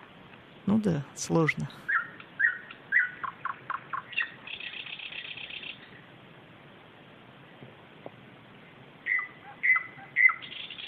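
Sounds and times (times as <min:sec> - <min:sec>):
speech: 0:00.7 - 0:01.9
common nightingale singing: 0:01.3 - 0:06.2, 0:09.0 - 0:10.8.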